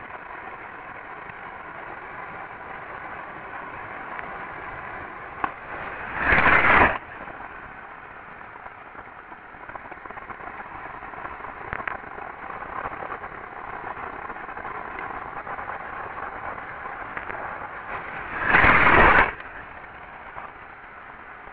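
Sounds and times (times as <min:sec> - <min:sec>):
steam hissing: 0:05.6 - 0:07.0, 0:17.8 - 0:19.7.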